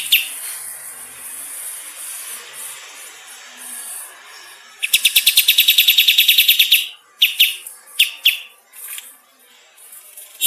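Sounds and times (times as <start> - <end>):
bulbul chirping: 0.0 - 0.4, 4.8 - 8.6.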